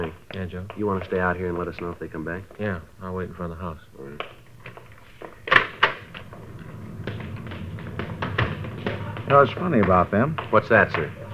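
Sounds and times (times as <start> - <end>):
speech: 0.4 - 4.4, 9.3 - 11.3
house back door clicking as it swings and shuts: 5.4 - 9.3.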